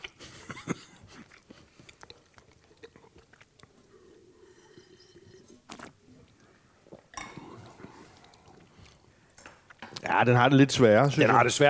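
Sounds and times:
wet mouth sounds: 0:00.0 - 0:09.1
person chewing a mouthful of food with red cabbage: 0:00.0 - 0:09.8
speech: 0:10.2 - 0:11.6.

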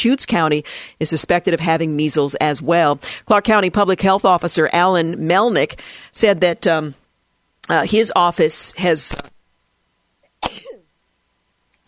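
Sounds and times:
speech: 0:00.0 - 0:07.0, 0:07.7 - 0:09.3
faint breath: 0:00.6 - 0:01.0, 0:05.8 - 0:06.1
person sneezing on air: 0:10.4 - 0:10.9.

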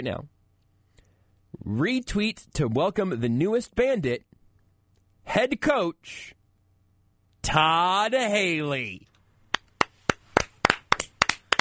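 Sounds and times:
speech: 0:00.0 - 0:00.4, 0:01.5 - 0:04.3, 0:05.3 - 0:06.4, 0:07.4 - 0:09.1
sharp hand claps: 0:09.5 - 0:11.6.

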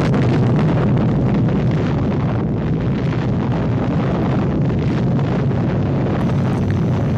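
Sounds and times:
atomic bomb blast roaring rumble: 0:00.0 - 0:07.1.

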